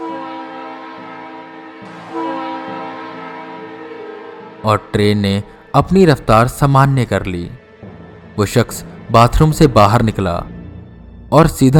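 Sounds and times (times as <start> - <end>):
train horn blasts from a moving train: 0.0 - 5.8
low rumble of a moving train: 0.0 - 11.7
speech: 4.6 - 7.6, 8.4 - 10.6, 11.3 - 11.7.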